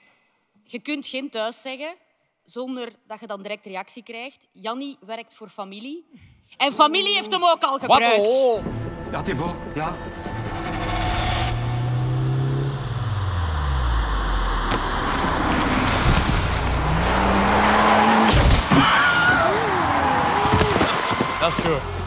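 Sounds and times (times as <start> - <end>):
speech: 0.7 - 10.3, 21.4 - 22.0
car tires screeching: 8.6 - 22.0
falling car engine whine: 8.6 - 22.0
sharp crashing impacts of a car hitting a person: 10.0 - 21.3.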